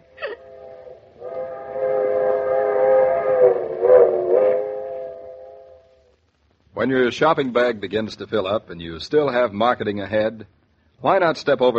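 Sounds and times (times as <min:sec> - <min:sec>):
distant train whistle: 0:00.5 - 0:06.1
speech: 0:06.8 - 0:11.7.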